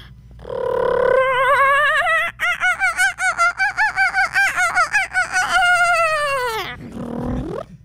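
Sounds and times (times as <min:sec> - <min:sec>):
person imitating the laughing call of a kookaburra: 0:00.4 - 0:07.7.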